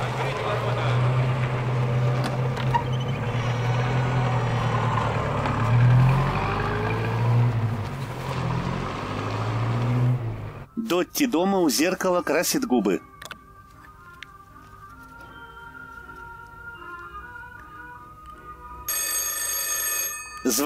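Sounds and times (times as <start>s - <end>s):
black car engine driving off from an institute's grounds: 0.0s - 10.7s
speech: 10.9s - 13.1s.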